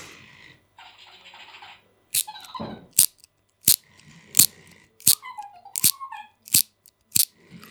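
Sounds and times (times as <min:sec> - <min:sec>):
small mechanical toy whirring: 0:02.2 - 0:07.6.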